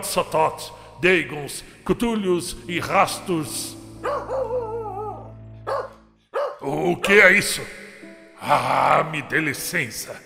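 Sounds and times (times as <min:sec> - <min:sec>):
speech: 0:00.0 - 0:04.7, 0:06.6 - 0:07.8, 0:08.4 - 0:10.2
dog tied up on its collar barking with yowling howl-like tone: 0:04.0 - 0:06.7.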